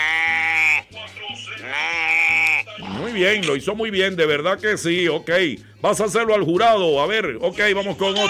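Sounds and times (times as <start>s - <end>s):
person imitating a sheep bleating: 0.0s - 0.9s, 1.6s - 3.4s
speech: 3.2s - 8.2s.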